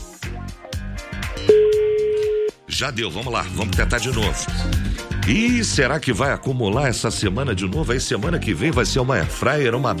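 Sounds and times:
telephone line ringing during prize draw calls: 0:01.5 - 0:02.5
speech: 0:02.8 - 0:09.9.

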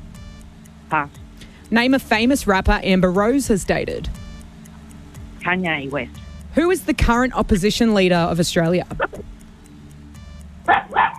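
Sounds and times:
speech: 0:00.9 - 0:04.2, 0:05.5 - 0:09.2
dog barking: 0:10.7 - 0:11.1.

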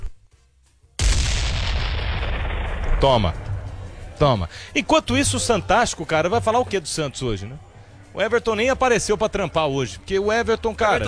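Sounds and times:
bomb explosion sound effect: 0:01.0 - 0:04.8
speech: 0:03.0 - 0:03.5, 0:04.2 - 0:11.0.

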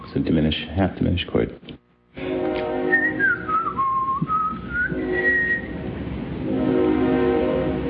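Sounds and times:
speech: 0:00.1 - 0:01.8
freight train whistle: 0:02.2 - 0:07.8.

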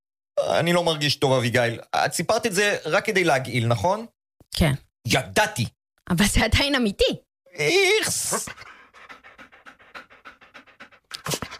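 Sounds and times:
speech: 0:00.4 - 0:08.8
dog panting: 0:08.1 - 0:11.5.

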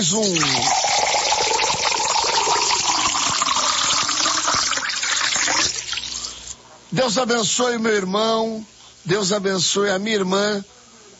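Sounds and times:
speech: 0:00.0 - 0:00.8, 0:06.9 - 0:10.8
water pouring into a drinking glass: 0:00.2 - 0:06.6.

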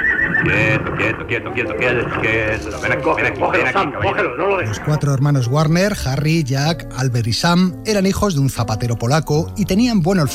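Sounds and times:
horse neighing: 0:00.0 - 0:02.2
speech: 0:00.4 - 0:10.3.

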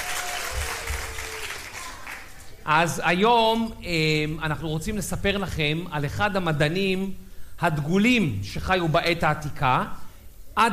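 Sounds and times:
audience applause at a live show: 0:00.0 - 0:02.6
speech: 0:02.6 - 0:10.0, 0:10.6 - 0:10.7.

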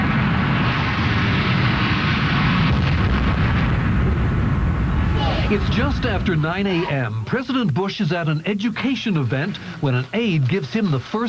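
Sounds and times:
huge explosion with deep rolling roar: 0:00.0 - 0:11.2
speech: 0:05.5 - 0:11.2.

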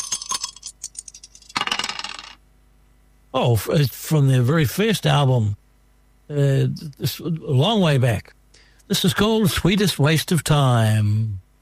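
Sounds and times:
hard plastic dice rattling and tumbling on a surface: 0:00.0 - 0:02.4
speech: 0:03.3 - 0:05.6, 0:06.3 - 0:11.4.

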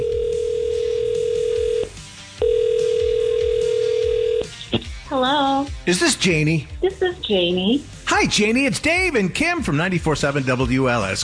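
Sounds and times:
ringback tones from an outgoing phone call: 0:00.0 - 0:04.6
speech: 0:05.1 - 0:11.2.

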